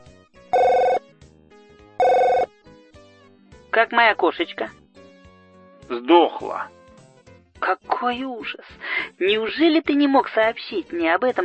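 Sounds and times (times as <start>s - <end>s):
electronic telephone ringing: 0.5s - 1.0s, 2.0s - 2.5s
speech: 3.8s - 4.8s, 5.9s - 6.8s, 7.6s - 11.4s.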